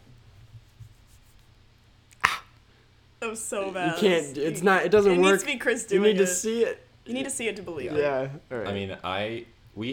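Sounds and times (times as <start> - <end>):
voice imitating a paper cut with a hissing swipe: 2.2 - 2.5
speech: 3.3 - 9.9.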